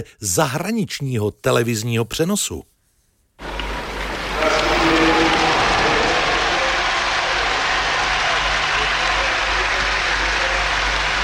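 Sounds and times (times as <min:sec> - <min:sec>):
speech: 0:00.0 - 0:02.7
large stadium crowd applauding and roaring: 0:03.4 - 0:11.2.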